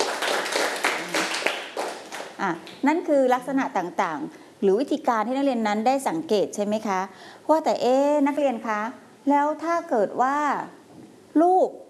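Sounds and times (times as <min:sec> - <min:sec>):
classroom class applauding students who answered a question: 0:00.0 - 0:02.4
speech: 0:02.4 - 0:10.8, 0:11.4 - 0:11.8.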